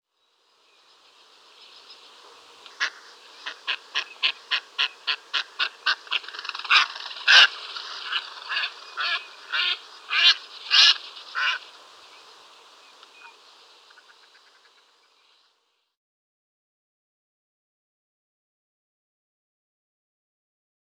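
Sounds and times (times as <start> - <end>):
mallard calls: 2.7 - 11.7.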